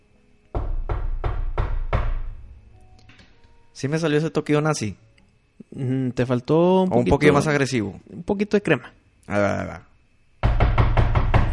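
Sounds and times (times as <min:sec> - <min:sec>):
firm knocking on a wooden door: 0:00.5 - 0:02.5, 0:10.4 - 0:11.5
speech: 0:03.8 - 0:05.1, 0:05.7 - 0:09.9.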